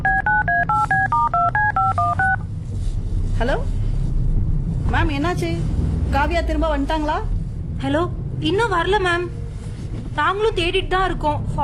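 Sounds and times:
touch-tone keypad beeps as a phone number is dialed: 0.0 - 2.4
low hum: 0.0 - 11.6
speech: 5.3 - 9.4, 10.2 - 11.6.

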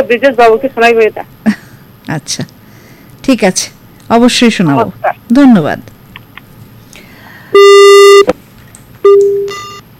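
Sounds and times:
speech: 0.0 - 1.4, 2.1 - 2.6, 3.2 - 5.9
telephone busy signal on a faulty phone line: 7.6 - 8.3, 9.0 - 9.8.

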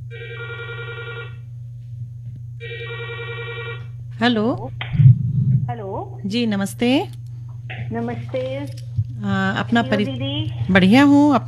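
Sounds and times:
low hum: 0.0 - 11.4
electronic telephone ringing for incoming call: 0.1 - 1.4, 2.6 - 3.9
speech: 4.2 - 5.2, 6.2 - 7.2, 7.9 - 11.4.

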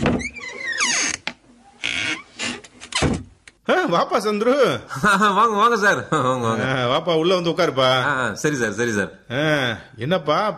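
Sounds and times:
door creaking open: 0.0 - 3.4
speech: 3.7 - 10.5.

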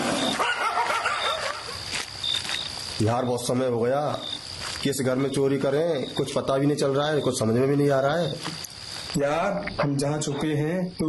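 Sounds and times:
dogs barking and yelping: 0.0 - 1.9
speech: 3.0 - 11.0.

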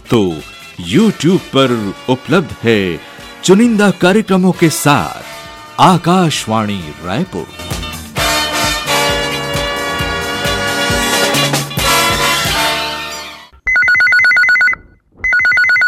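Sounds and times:
upbeat music: 0.0 - 13.6
speech: 0.1 - 7.8
loud electronic trilling telephone ringtone: 13.6 - 15.8.

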